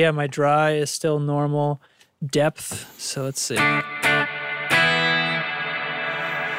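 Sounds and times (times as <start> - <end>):
speech: 0.0 - 4.2
electric guitar through a heavy reverb pedal with deep dark wash: 3.6 - 6.5.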